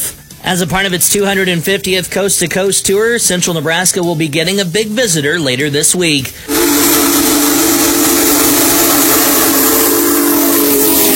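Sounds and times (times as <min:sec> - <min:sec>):
speech: 0:00.4 - 0:07.2
Union Pacific Big Boy steam locomotive 4014 whistle: 0:06.5 - 0:11.1.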